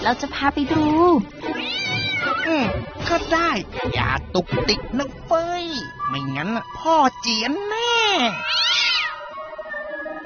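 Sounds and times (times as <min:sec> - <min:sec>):
speech: 0:00.1 - 0:08.9
cat meowing: 0:01.4 - 0:02.8, 0:08.2 - 0:10.2.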